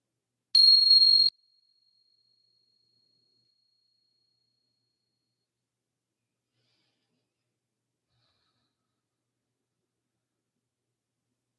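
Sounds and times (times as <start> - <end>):
bright high-pitched meditation bell ringing: 0.6 - 1.3.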